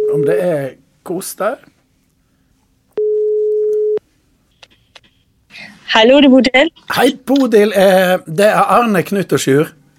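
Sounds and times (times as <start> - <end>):
speech: 0.1 - 1.8, 5.6 - 9.8
ringback tone of an outgoing phone call: 3.0 - 4.0.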